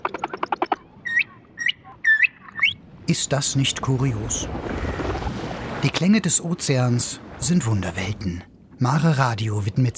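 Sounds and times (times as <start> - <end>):
humpback whale song sped up and raised by three octaves: 0.0 - 3.0
speech: 3.1 - 5.0, 5.8 - 9.9.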